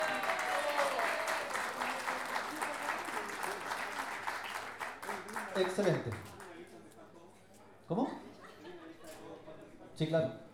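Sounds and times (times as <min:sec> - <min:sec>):
audience applause at an improvised-verse poetry tournament: 0:00.0 - 0:06.5
speech: 0:05.6 - 0:06.4, 0:07.9 - 0:08.2, 0:10.0 - 0:10.4.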